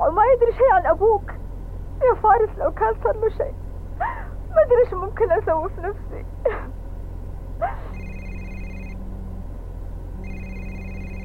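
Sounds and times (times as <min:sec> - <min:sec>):
speech: 0:00.0 - 0:01.3, 0:02.0 - 0:06.8, 0:07.6 - 0:08.0
low hum: 0:00.0 - 0:11.2
telephone ringing with an incoming call: 0:07.9 - 0:09.0, 0:10.2 - 0:11.2.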